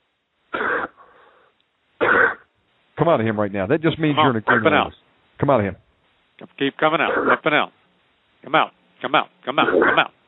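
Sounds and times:
forceful deep coughs: 0.5s - 1.0s, 2.0s - 2.4s, 4.5s - 4.8s, 7.0s - 7.5s, 9.6s - 10.1s
speech: 3.1s - 5.8s, 6.4s - 7.8s, 8.4s - 10.2s.

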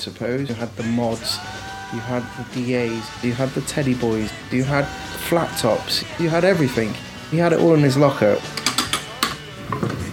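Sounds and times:
speech: 0.0s - 8.6s
barber chair mechanism ratcheting: 8.5s - 10.1s.

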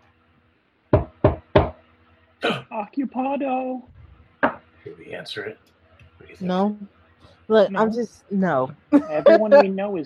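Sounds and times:
firm knocks on the door of a bar: 0.9s - 1.8s
speech: 2.4s - 4.0s, 4.9s - 10.0s
laughter: 8.9s - 9.8s.

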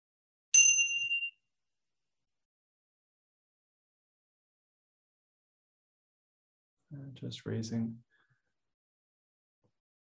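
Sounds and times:
single bell strike during a practice: 0.5s - 1.4s
speech: 6.9s - 8.1s.

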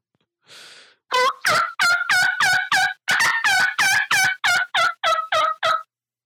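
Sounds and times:
turkey call played over a speakerphone: 1.1s - 5.9s.

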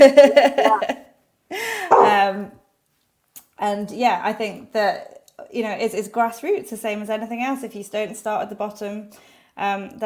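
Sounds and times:
speech: 0.0s - 2.6s, 3.6s - 10.0s
dog barking with a whining yowling tone: 1.9s - 2.2s.

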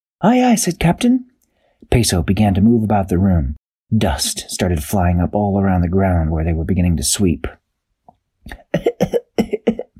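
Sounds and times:
speech: 0.2s - 7.6s, 8.4s - 9.2s
harsh coughing fit: 8.5s - 9.9s.

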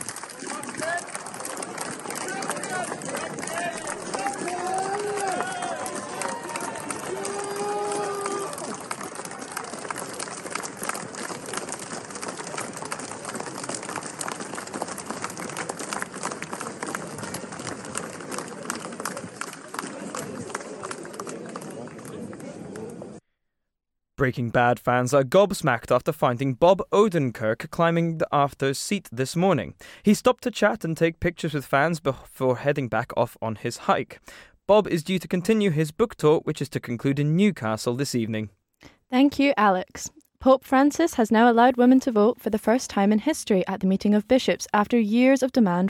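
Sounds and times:
crowd cheering and shouting at a funeral procession: 0.0s - 10.2s
large crowd clapping along streets at a funeral procession: 0.0s - 23.2s
speech: 24.2s - 45.8s.

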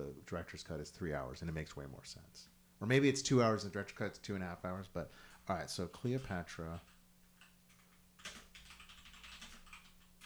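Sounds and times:
speech: 0.2s - 6.9s
typing on a loud old-fashioned keyboard: 6.2s - 10.2s.

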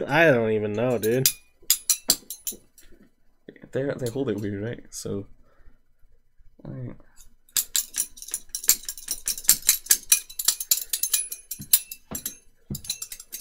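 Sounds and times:
speech: 0.0s - 1.4s, 3.7s - 5.4s, 6.6s - 7.1s
metallic clicking of spoons struck together: 1.0s - 2.6s, 7.6s - 13.3s.

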